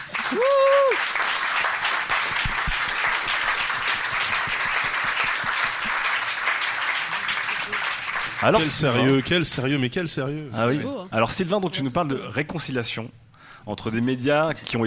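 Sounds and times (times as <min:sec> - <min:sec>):
audience applause: 0:00.0 - 0:09.3
voice-like tone or shout: 0:00.2 - 0:01.0
speech: 0:00.3 - 0:01.3, 0:08.4 - 0:14.8.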